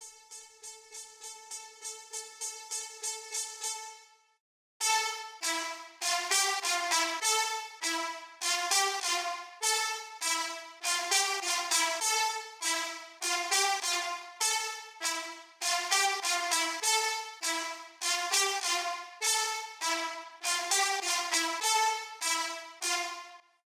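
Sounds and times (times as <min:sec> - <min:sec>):
brass lead melody in A minor: 0:04.8 - 0:23.4.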